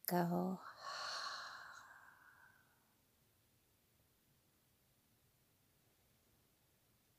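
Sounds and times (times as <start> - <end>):
speech: 0.1 - 0.9
deep cleansing breath exhaled through the open mouth: 0.7 - 2.8.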